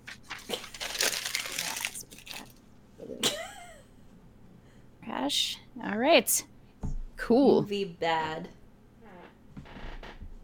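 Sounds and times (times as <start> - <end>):
sheet of paper being crumpled up: 0.0 - 2.6
speech: 5.3 - 6.5, 7.3 - 8.6.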